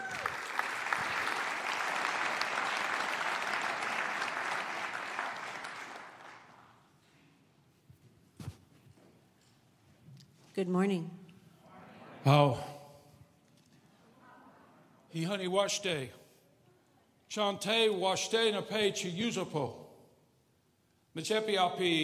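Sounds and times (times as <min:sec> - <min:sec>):
church audience applauding warmly to welcome guest speakers: 0:00.0 - 0:06.8
faint shuffles: 0:07.0 - 0:10.6
speech: 0:10.6 - 0:11.2, 0:12.2 - 0:12.7, 0:15.2 - 0:16.2, 0:17.3 - 0:19.8, 0:21.2 - 0:22.0.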